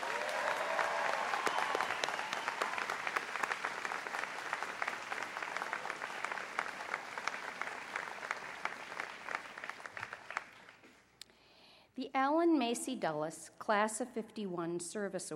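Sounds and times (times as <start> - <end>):
large graduating class crowd applauding in a big room: 0.0 - 11.1
speech: 12.2 - 15.3.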